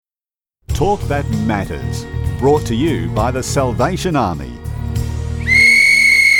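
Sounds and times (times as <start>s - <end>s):
speech: 0.8s - 4.6s
referee's whistle blast signalling five minutes to kick-off: 5.4s - 6.3s.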